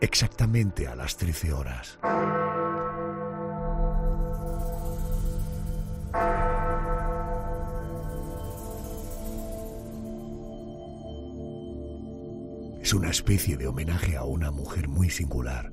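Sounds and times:
speech: 0.0s - 2.6s, 12.9s - 15.7s
large bells tolling: 0.8s - 11.4s.

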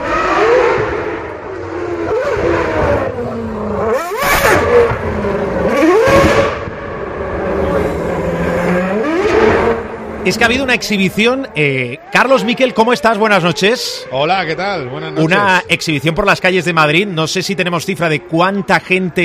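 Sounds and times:
Formula 1 car engine revving on city streets: 0.0s - 14.6s
speech: 10.3s - 19.2s.

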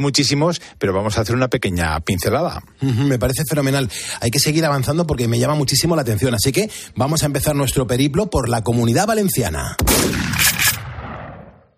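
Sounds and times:
speech: 0.0s - 10.8s
hunting gunshots in open country in Valencia province, Spain: 9.8s - 11.7s.

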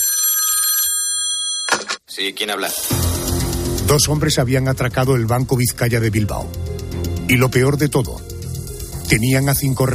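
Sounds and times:
telephone bell ringing: 0.0s - 2.0s
speech: 2.2s - 3.1s, 3.9s - 6.7s, 7.3s - 8.3s, 9.1s - 9.9s.

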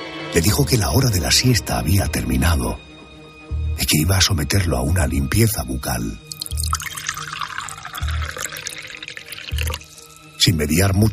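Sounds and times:
speech: 0.4s - 2.9s, 3.8s - 6.7s, 10.4s - 11.1s
water pouring into an old man's throat: 6.2s - 10.4s.

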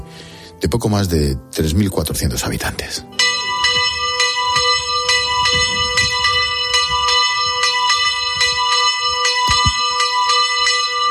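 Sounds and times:
speech: 0.6s - 3.2s
hermitage church bell ringing: 3.1s - 11.0s
faint low rumbling: 3.2s - 10.4s.

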